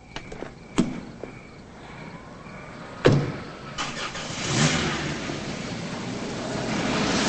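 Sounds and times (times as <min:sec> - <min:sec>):
knocks and clunks of a woman getting into her car: 0:00.1 - 0:01.5, 0:03.0 - 0:03.5
car driving away with broad rumbling whoosh: 0:01.8 - 0:07.2
car engine turning over: 0:02.5 - 0:07.2.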